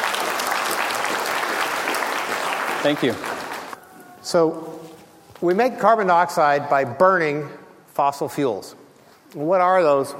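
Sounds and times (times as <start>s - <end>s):
room full of people clapping: 0.0s - 3.8s
speech: 2.8s - 3.3s, 4.2s - 10.1s.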